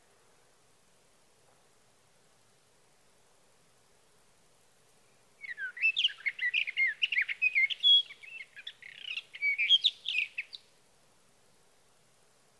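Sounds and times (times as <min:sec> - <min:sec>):
Sage thrasher singing a sustained warble of quick varied whistled notes: 0:05.4 - 0:10.6.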